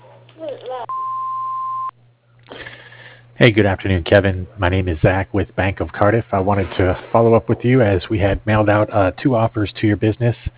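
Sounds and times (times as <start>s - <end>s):
speech: 0.4s - 1.0s, 3.4s - 10.5s
voicemail recording beep: 0.9s - 1.9s.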